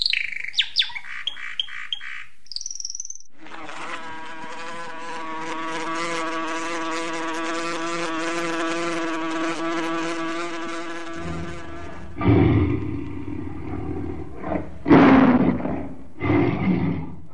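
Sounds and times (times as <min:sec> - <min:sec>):
buzzing drone: 0:03.4 - 0:14.8
lion roaring: 0:11.2 - 0:17.3.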